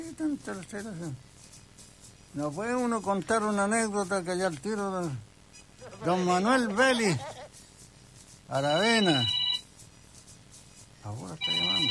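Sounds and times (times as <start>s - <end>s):
speech: 0.1s - 1.3s, 2.3s - 7.3s, 8.5s - 9.4s, 11.0s - 11.8s
laughter: 5.8s - 7.6s
telephone ringing with a bright melodic electronic ringtone: 8.6s - 9.7s, 11.4s - 11.8s.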